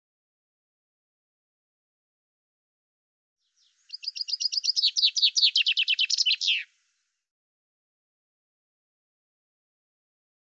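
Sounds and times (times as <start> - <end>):
common chaffinch song: 3.9 - 6.7.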